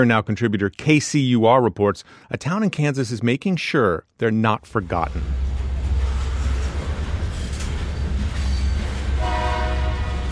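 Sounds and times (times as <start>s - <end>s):
speech: 0.0s - 5.4s
freight train hauling grain rumbling past in Concordia Kansas: 4.7s - 10.3s
freight train horn blast: 9.2s - 10.3s.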